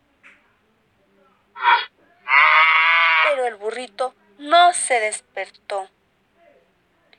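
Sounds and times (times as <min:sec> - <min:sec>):
voice imitating a cow's loud moo: 0:01.6 - 0:03.4
speech: 0:03.5 - 0:06.0.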